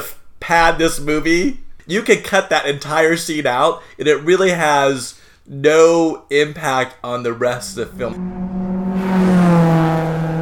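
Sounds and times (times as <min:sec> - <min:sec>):
speech: 0:00.5 - 0:08.6
car engines roaring while racing across the desert: 0:07.4 - 0:10.4.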